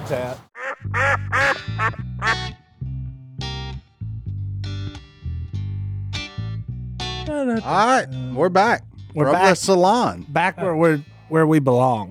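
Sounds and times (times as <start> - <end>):
speech: 0.1 - 2.6, 7.3 - 12.0
duck call quacking: 0.6 - 2.5.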